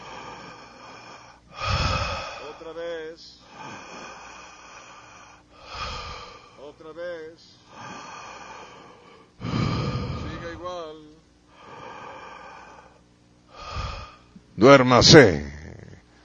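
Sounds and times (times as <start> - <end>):
person inhaling deeply and forcefully: 0.0 - 2.7, 3.4 - 6.7, 7.7 - 10.6, 11.5 - 14.4
speech: 14.6 - 15.5.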